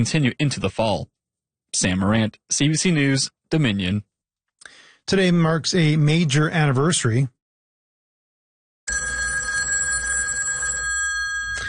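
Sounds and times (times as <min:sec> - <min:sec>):
speech: 0:00.0 - 0:07.4
old-fashioned telephone bell ringing with a bright metallic jangle: 0:08.9 - 0:11.6.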